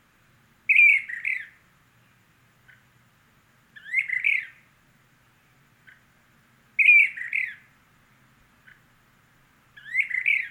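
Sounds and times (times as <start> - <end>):
Brown-crested flycatcher Myiarchus tyrannulus magister harsh rolling burry calls: 0.6 - 10.4.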